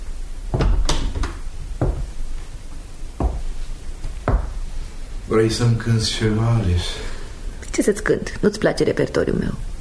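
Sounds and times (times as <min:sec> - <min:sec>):
wooden door thudding shut against its frame: 0:00.5 - 0:02.1, 0:04.3 - 0:04.6
speech: 0:05.3 - 0:07.1, 0:07.8 - 0:09.7.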